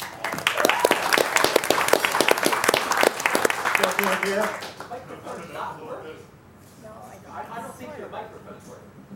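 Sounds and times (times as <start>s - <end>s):
audience applause at a forum opening: 0.0s - 5.0s
speech: 4.0s - 4.8s.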